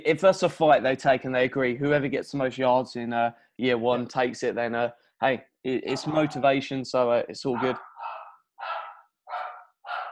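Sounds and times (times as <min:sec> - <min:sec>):
speech: 0:00.0 - 0:07.9
dog barking: 0:05.9 - 0:06.4, 0:07.5 - 0:10.1.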